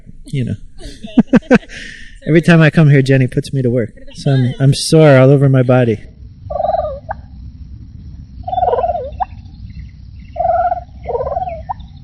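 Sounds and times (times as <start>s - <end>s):
low rumble: 0.0s - 12.0s
speech: 0.2s - 6.1s
laughter: 0.8s - 2.5s
male turkeys gobbling: 6.5s - 7.2s, 8.4s - 9.5s, 10.4s - 12.0s.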